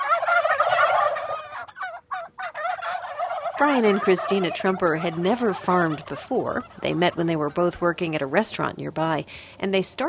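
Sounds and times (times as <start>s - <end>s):
heritage-breed bourbon red turkeys gobbling on organic farmland: 0.0s - 8.8s
speech: 3.6s - 10.0s.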